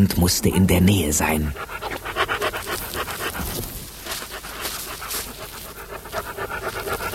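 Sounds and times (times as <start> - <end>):
speech: 0.0 - 1.9
dog sniffing: 1.4 - 7.1.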